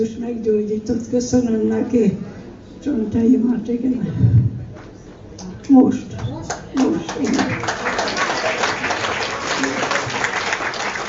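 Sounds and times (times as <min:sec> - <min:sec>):
speech: 0:00.0 - 0:04.4, 0:05.7 - 0:08.0
crowd applauding: 0:06.4 - 0:11.0.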